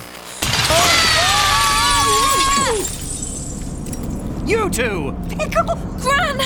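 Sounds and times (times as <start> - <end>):
building window glass shattering from break-in: 0.4 - 4.2
tinkling glass debris: 0.4 - 4.4
speech: 4.5 - 6.4.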